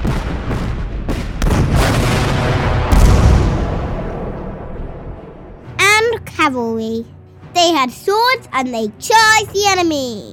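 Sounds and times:
heavy cannon artillery fire in a rapid barrage: 0:00.0 - 0:05.7
rumbling continuous battlefield roar: 0:00.0 - 0:05.8
speech: 0:06.4 - 0:10.3.

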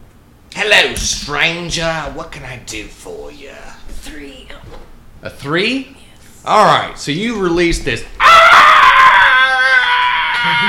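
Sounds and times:
speech: 0:00.7 - 0:08.4, 0:10.4 - 0:10.6
harsh strained raspy scream: 0:08.2 - 0:10.6.

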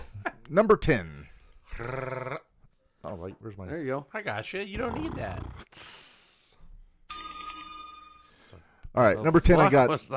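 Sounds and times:
speech: 0:00.5 - 0:01.2, 0:01.8 - 0:02.2, 0:03.2 - 0:06.0, 0:09.0 - 0:10.1
phone ringtone ringing with bright electronic tone: 0:07.1 - 0:08.4.

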